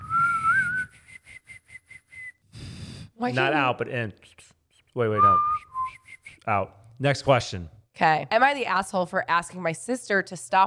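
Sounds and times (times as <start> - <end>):
person whistling a tune: 0.0 - 2.5, 5.2 - 6.5
speech: 3.2 - 5.7, 6.4 - 10.6.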